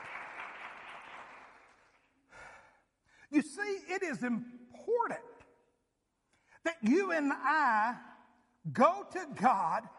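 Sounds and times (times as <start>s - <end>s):
audience clapping hands in praise to God: 0.0s - 2.2s
speech: 3.4s - 5.3s, 6.7s - 9.9s.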